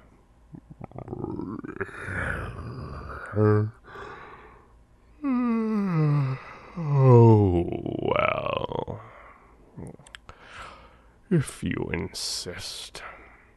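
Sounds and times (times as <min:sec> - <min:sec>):
person imitating a sleepy lion yawning: 0:00.6 - 0:03.8, 0:05.2 - 0:09.1
short vocal grunt: 0:00.6 - 0:03.8, 0:05.2 - 0:09.0
speech: 0:03.4 - 0:03.8, 0:11.3 - 0:13.1.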